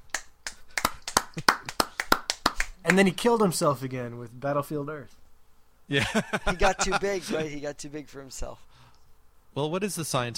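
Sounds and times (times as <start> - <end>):
hand claps: 0.0 - 3.5
speech: 2.8 - 5.2, 5.9 - 8.7, 9.5 - 10.3
laughter: 5.9 - 7.5.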